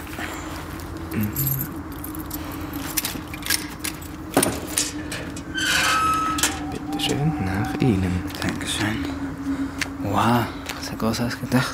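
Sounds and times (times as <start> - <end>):
low rumble: 0.0 - 11.7
speech: 1.1 - 1.8, 7.3 - 9.2, 10.1 - 11.7
keys jangling while unlocking a family crypt door: 1.3 - 6.9.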